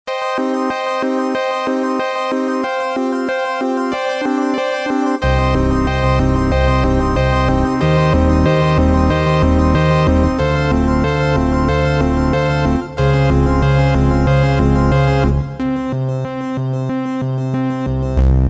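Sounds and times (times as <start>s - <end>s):
Casio CTK-601 keyboard tones and sequence: 0.1s - 17.9s.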